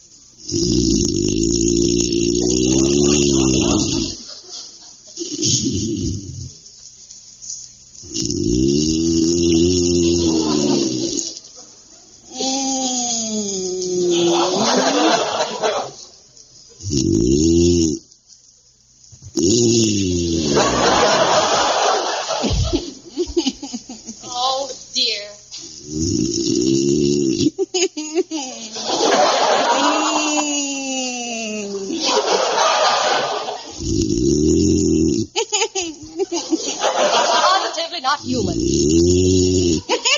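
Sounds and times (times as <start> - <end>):
man snoring in bed: 0.4 - 4.2, 5.2 - 6.6, 8.0 - 11.4, 12.3 - 15.1, 16.8 - 18.0, 19.3 - 21.1, 25.7 - 27.6, 33.7 - 35.4, 38.2 - 39.9
laughter: 2.8 - 5.1, 10.2 - 12.1, 14.1 - 16.1, 20.4 - 24.3, 27.6 - 33.8, 35.4 - 38.1, 39.9 - 40.1.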